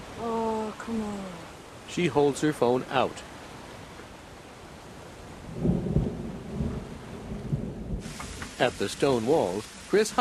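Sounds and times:
steady rain pouring outdoors: 0.0s - 10.2s
speech: 0.2s - 3.3s, 8.6s - 10.2s
low rolling thunder: 5.4s - 9.9s.

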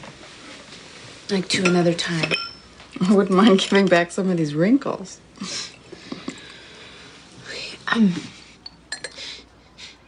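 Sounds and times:
speech: 1.3s - 2.4s, 3.0s - 5.7s, 7.9s - 8.3s
spoon stirring sugar in a ceramic coffee cup: 1.6s - 2.7s, 8.6s - 9.2s
soft whispery voices: 6.9s - 8.6s, 9.2s - 10.0s.

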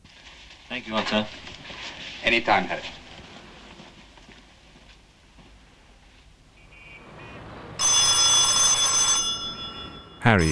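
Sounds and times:
speech: 0.7s - 1.5s, 2.2s - 3.0s, 10.3s - 10.4s
telephone bell ringing: 6.7s - 10.4s.

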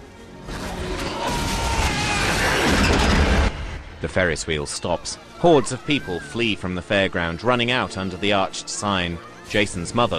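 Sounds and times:
explosion in an engine shed beneath a fairground Ferris wheel: 1.2s - 4.1s
speech: 4.0s - 10.1s.

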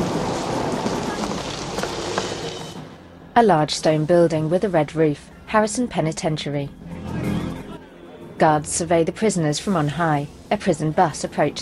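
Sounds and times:
pouring rain: 0.0s - 3.0s
speech: 3.4s - 6.9s, 8.4s - 11.5s.

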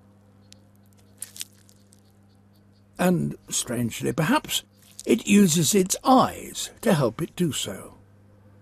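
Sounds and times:
steady low electrical hum: 0.0s - 8.6s
monkey frog swallowing a cricket: 0.9s - 2.0s, 4.8s - 5.2s
speech: 3.0s - 8.0s.

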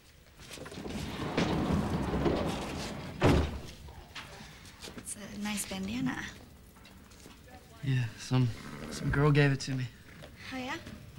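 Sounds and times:
sliding stall door shut in a horse stable: 0.4s - 4.5s
loud solid thud of a stall door: 1.1s - 3.9s
speech: 5.6s - 6.4s, 7.8s - 11.1s.

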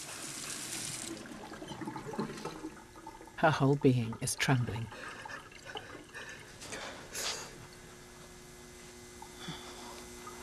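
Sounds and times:
running water gushing from a sink: 0.0s - 7.8s
speech: 3.4s - 5.2s.

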